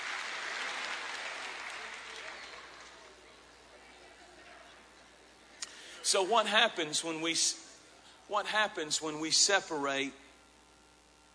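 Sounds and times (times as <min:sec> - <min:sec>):
audience clapping: 0:00.0 - 0:03.3
speech: 0:06.1 - 0:07.6, 0:08.3 - 0:10.2.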